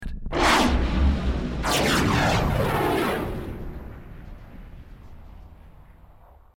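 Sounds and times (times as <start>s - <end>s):
high-tech device flying past at extremely high speed: 0.3s - 6.4s.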